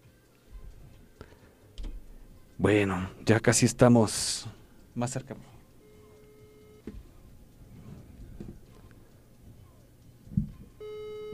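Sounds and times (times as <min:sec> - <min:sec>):
speech: 0:02.6 - 0:05.5
telephone call connecting tone: 0:05.8 - 0:07.0, 0:10.8 - 0:11.3.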